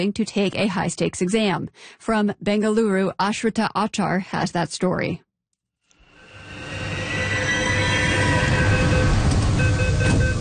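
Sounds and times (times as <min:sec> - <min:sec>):
speech: 0:00.0 - 0:05.2
low mechanical drone: 0:06.1 - 0:10.3
high metallic metro train wheel squeals: 0:06.2 - 0:10.3
metro train rumbling: 0:06.2 - 0:10.3.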